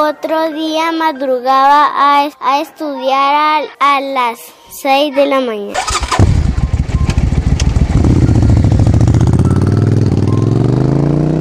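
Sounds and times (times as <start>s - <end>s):
speech: 0.0s - 6.4s
motorcycle engine revving: 5.8s - 11.3s.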